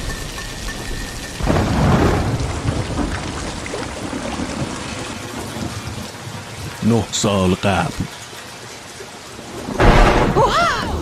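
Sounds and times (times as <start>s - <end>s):
steady rain downpour: 0.0s - 11.0s
loud deep thunder rumble: 0.7s - 6.9s, 9.4s - 11.0s
speech: 6.8s - 8.2s.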